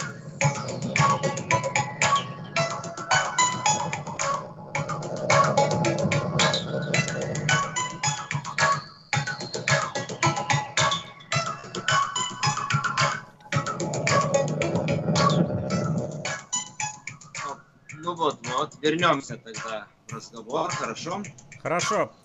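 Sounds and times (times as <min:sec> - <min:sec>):
lo-fi synth-driven melody: 0:00.0 - 0:17.0
speech: 0:18.8 - 0:22.2.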